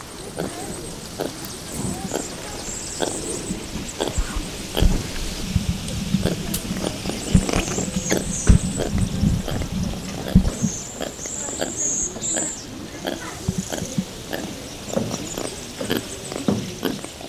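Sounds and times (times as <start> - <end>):
crackling rustles in a forest: 0.0 - 17.2
red-fronted brown lemurs making soft low grunting calls: 0.0 - 17.2.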